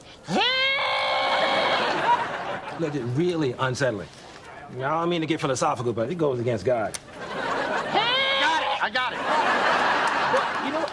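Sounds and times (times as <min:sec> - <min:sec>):
goat screaming like a human: 0:00.3 - 0:02.0, 0:07.9 - 0:08.9
laughter: 0:01.1 - 0:03.2, 0:07.0 - 0:10.9
speech: 0:02.8 - 0:07.2.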